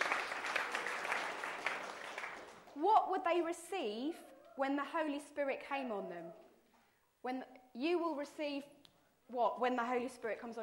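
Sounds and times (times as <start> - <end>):
faint group clapping during a Bible lesson: 0.0 - 2.9
speech: 2.8 - 6.4, 7.2 - 10.6.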